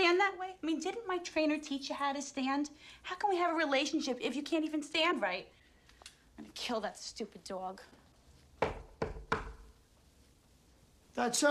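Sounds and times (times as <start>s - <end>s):
speech: 0.3s - 5.6s, 6.4s - 8.0s, 11.2s - 11.4s
sharp knocks on a door: 8.6s - 9.8s.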